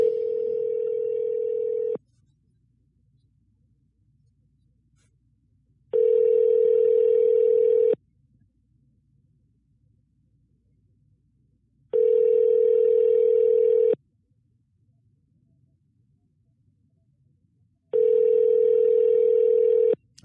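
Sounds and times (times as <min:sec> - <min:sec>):
ringback tone of an unanswered outgoing phone call: 0:00.0 - 0:02.0, 0:05.9 - 0:08.0, 0:12.0 - 0:14.0, 0:17.9 - 0:20.0.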